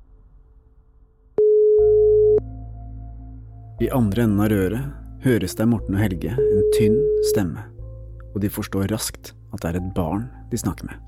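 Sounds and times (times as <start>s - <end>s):
telephone ringback tone on an outgoing call: 1.4s - 2.4s, 6.4s - 7.4s
speech: 3.8s - 7.7s, 8.4s - 11.0s.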